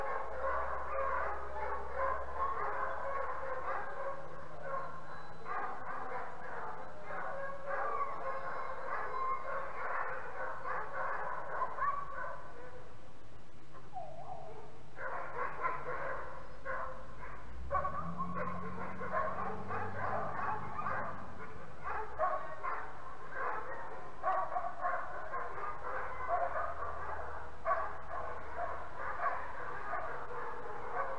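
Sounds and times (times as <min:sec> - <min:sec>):
wolves and dogs howling: 0:00.0 - 0:12.8, 0:13.9 - 0:31.1
yips and barks: 0:00.0 - 0:12.8, 0:13.8 - 0:31.1
deep low howls: 0:17.0 - 0:23.7.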